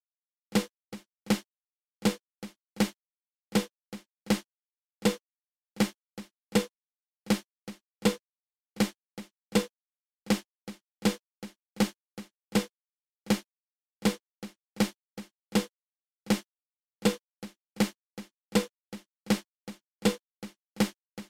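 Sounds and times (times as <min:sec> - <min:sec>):
snare drum inverted flam taps: 0:00.6 - 0:01.4, 0:02.1 - 0:03.0, 0:03.6 - 0:04.4, 0:06.5 - 0:08.2, 0:09.5 - 0:11.2, 0:12.5 - 0:13.4, 0:14.8 - 0:16.4, 0:17.1 - 0:18.0, 0:18.5 - 0:21.2.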